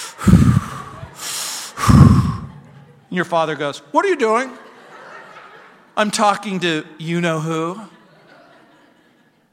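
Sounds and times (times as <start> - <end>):
heavy exaggerated breathing: 0.0 - 2.8
laughter: 0.1 - 3.3, 4.3 - 9.5
speech: 3.1 - 4.6, 6.0 - 8.0.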